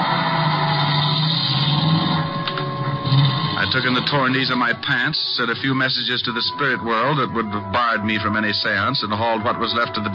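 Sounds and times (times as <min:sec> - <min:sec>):
car engine humming as the car pulls away: 0:00.0 - 0:05.4
speech: 0:03.7 - 0:10.1.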